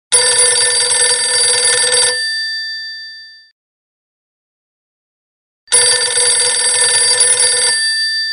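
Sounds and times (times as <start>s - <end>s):
classic phone ringing: 0.1s - 3.3s, 5.7s - 8.3s.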